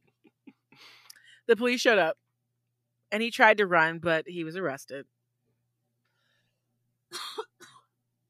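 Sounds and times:
speech: 1.5 - 2.2, 3.1 - 5.2
harsh coughs: 7.1 - 7.9.

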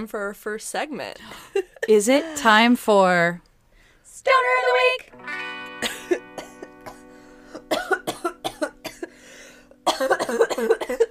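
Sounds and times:
speech: 0.0 - 3.5, 4.2 - 6.3, 9.9 - 11.0
harsh hacking coughs after smoking a bong: 5.8 - 11.0.

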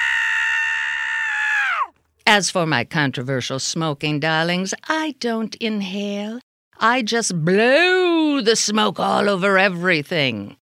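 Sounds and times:
loud sustained human scream: 0.0 - 1.9
speech: 2.3 - 10.6.

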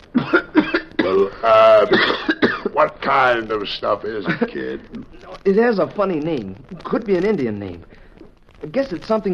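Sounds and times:
child coughing with hacking, rough, strained coughs: 0.2 - 2.7
speech: 1.2 - 2.2, 2.8 - 8.0, 8.6 - 9.3.

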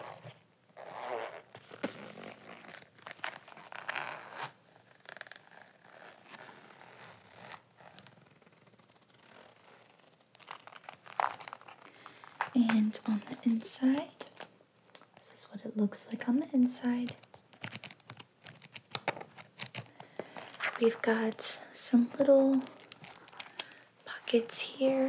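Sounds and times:
bag zipper rasps: 0.0 - 12.6, 19.4 - 21.4
bag fabric rustling and crinkling: 0.0 - 15.2, 18.3 - 25.0
speech: 12.6 - 14.2, 15.8 - 17.2, 20.8 - 22.8, 24.3 - 25.0.

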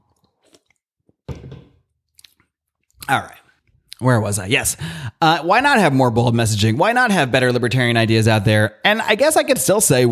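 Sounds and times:
small lip sounds: 0.1 - 0.8, 2.1 - 4.1
wet slurp and gulp of fizzy cola: 0.1 - 0.8, 2.1 - 4.0
faint mouth clicks: 2.2 - 4.0
speech: 3.1 - 3.4, 4.0 - 10.1.

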